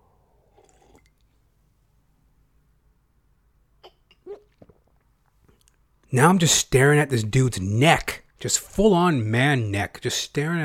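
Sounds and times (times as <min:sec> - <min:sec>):
wet throat clicks and swallows: 0:00.6 - 0:01.3, 0:03.8 - 0:05.8
voice imitating a man gulping water: 0:03.8 - 0:05.0
speech: 0:06.1 - 0:10.6.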